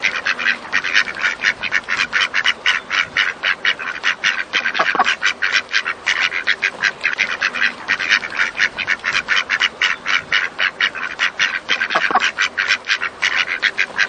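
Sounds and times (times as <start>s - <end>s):
ducks quacking on a lake: 0.0s - 14.0s.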